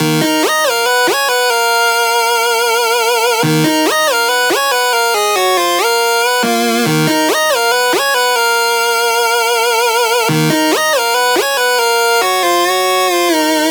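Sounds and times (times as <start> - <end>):
riddim melodic loop in D sharp at 140 BPM: 0.0 - 12.8.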